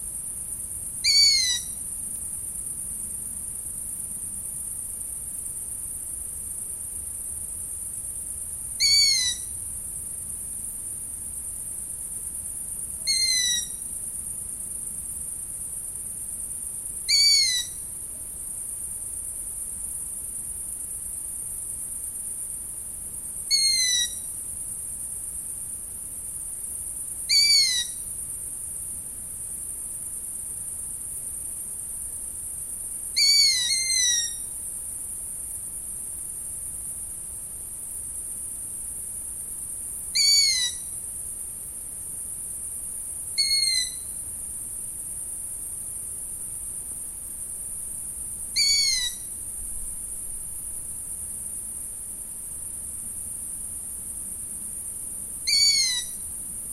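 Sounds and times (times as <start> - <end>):
long-eared owl: 1.0 - 1.8, 8.8 - 9.6, 13.0 - 13.8, 17.0 - 17.9, 23.5 - 24.3, 27.3 - 28.1, 33.1 - 34.6, 40.1 - 41.0, 43.4 - 44.2, 48.5 - 49.4, 55.4 - 56.3.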